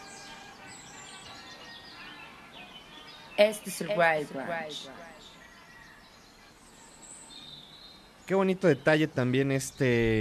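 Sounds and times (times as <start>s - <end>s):
faint birdsong with thin high chirps and whistles: 0.0s - 10.1s
steady hissing wash: 0.0s - 10.1s
speech: 3.4s - 5.3s, 8.3s - 10.1s.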